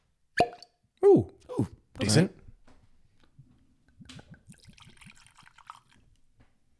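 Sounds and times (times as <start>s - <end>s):
speech: 1.0s - 2.4s
whiskey being poured into a glass: 3.9s - 6.4s.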